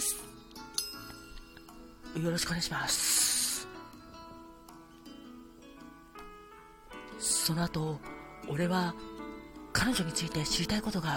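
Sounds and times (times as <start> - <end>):
glasses clinking in a toast: 0.7 - 1.8
speech: 2.2 - 3.1, 7.5 - 9.1, 9.8 - 11.1.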